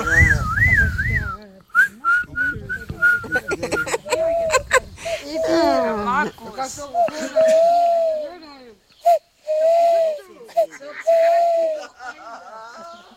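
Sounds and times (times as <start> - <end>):
person whistling an imitation of owl calls: 0.0 - 3.9, 6.9 - 12.0
laughter: 3.2 - 6.4, 7.0 - 8.1, 10.3 - 13.1.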